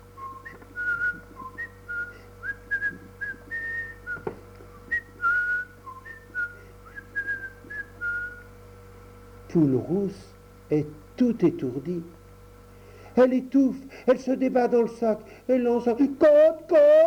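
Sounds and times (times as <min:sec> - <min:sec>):
steady low hum: 0:00.0 - 0:17.0
person whistling a lilting bouncy tune: 0:00.2 - 0:08.5
speech: 0:09.5 - 0:12.2, 0:13.2 - 0:17.0.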